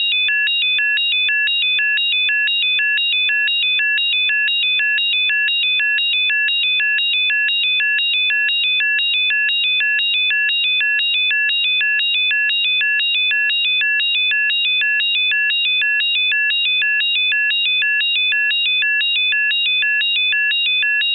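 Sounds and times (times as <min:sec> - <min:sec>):
control room alarm with two-tone electronic tone: 0:00.0 - 0:21.1.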